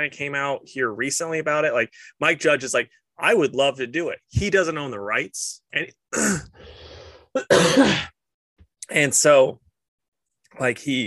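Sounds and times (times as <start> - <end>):
speech: 0.0 - 6.8, 7.4 - 8.2, 8.9 - 9.6, 10.6 - 11.0
throat clearing from someone with something caught in the throat: 7.4 - 8.2.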